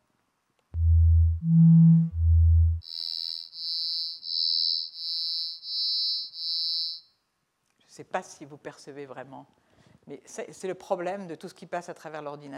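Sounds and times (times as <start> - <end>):
low pure tones for a pitch perception demonstration: 0.8 - 2.8
high pure tone beeps for a pitch perception demonstration: 0.8 - 7.0
speech: 8.0 - 12.5.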